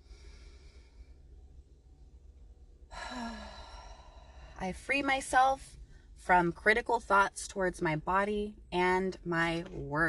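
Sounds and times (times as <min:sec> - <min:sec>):
single deep breath as a loud airy sigh: 0:00.0 - 0:01.3, 0:02.9 - 0:04.6
speech: 0:04.6 - 0:10.0.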